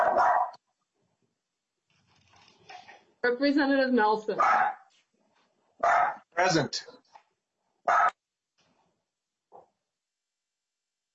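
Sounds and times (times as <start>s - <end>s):
dog barking: 0.0s - 0.6s, 4.4s - 4.9s, 5.8s - 6.3s, 7.8s - 8.2s
speech: 3.2s - 4.6s, 6.4s - 7.0s.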